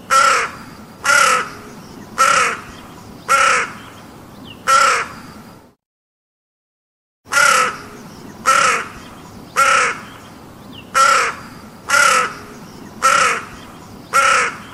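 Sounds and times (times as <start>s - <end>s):
crow calling with harsh grating caws: 0.1s - 1.6s, 2.2s - 3.8s, 4.7s - 5.4s, 7.3s - 10.2s, 11.0s - 14.7s.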